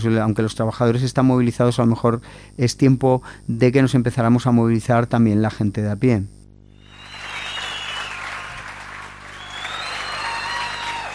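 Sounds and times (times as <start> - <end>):
speech: 0.0 - 6.4
audience applauding: 6.8 - 11.1.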